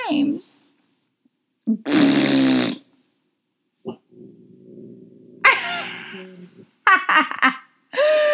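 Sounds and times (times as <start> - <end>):
speech: 0.1 - 0.6, 1.7 - 2.7, 6.1 - 8.2
loud buzzy fart noise: 1.7 - 2.9.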